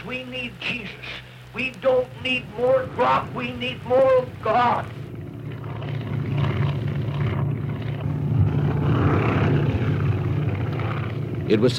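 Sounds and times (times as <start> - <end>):
speech: 0.0 - 5.0, 11.5 - 11.7
small propeller plane engine droning while taking off: 0.0 - 11.7.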